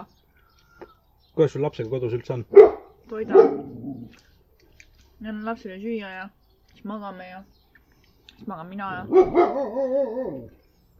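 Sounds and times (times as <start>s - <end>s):
speech: 1.4s - 4.2s, 5.2s - 7.6s, 8.4s - 10.6s
dog barking: 2.5s - 4.1s, 9.0s - 10.5s.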